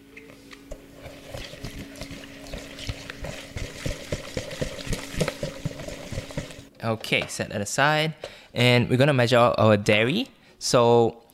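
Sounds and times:
whisking ingredients together in a bowl: 0:01.0 - 0:06.7
speech: 0:06.8 - 0:11.2.

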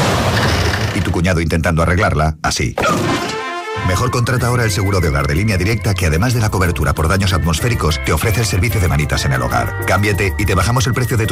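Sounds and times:
booming crash of a home antenna being wrecked: 0:00.0 - 0:01.2, 0:02.8 - 0:03.6
speech: 0:01.0 - 0:03.2, 0:03.9 - 0:11.3.

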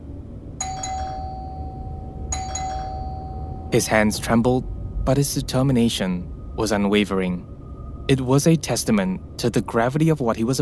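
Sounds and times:
steady low rumble: 0:00.0 - 0:10.5
doorbell double chime in a cramped corridor of a rented place in Hong Kong: 0:00.6 - 0:03.9
speech: 0:03.7 - 0:07.5, 0:08.1 - 0:10.5.

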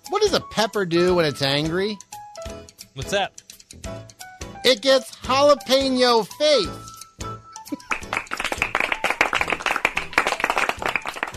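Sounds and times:
speech: 0:00.1 - 0:02.1, 0:03.0 - 0:06.9
small group politely clapping hands: 0:07.7 - 0:11.3.

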